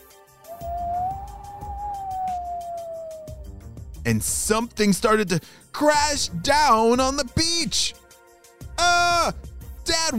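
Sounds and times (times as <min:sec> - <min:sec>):
eerie howling wind: 0:00.5 - 0:03.5
speech: 0:04.1 - 0:08.0, 0:10.0 - 0:10.1.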